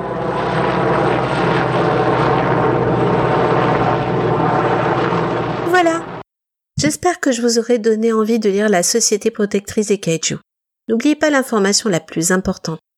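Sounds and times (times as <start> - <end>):
helicopter engine and rotor noise overhead: 0.0 - 6.2
rising whine: 0.0 - 6.2
speech: 7.0 - 12.9.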